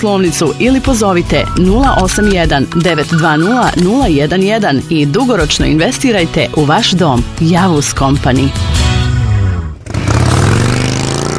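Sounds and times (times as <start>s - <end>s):
speech: 0.0s - 8.9s
motorcycle engine roaring: 8.6s - 11.3s.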